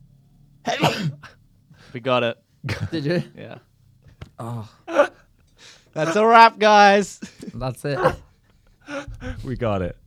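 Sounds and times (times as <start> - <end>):
person sneezing: 0.7 - 1.4, 4.4 - 5.2, 8.0 - 8.3, 8.9 - 9.3
speech: 1.9 - 3.7, 4.4 - 5.1, 6.0 - 8.2, 9.4 - 10.0.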